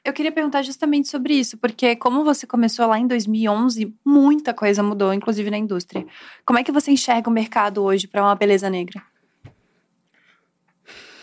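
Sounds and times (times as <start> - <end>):
speech: 0.1 - 9.1
audible deep breath: 6.1 - 6.4, 9.6 - 11.2.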